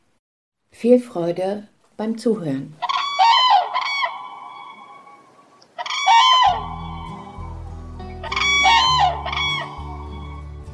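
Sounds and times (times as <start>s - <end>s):
speech: 0.8s - 2.8s
common cranes calling: 2.8s - 10.7s.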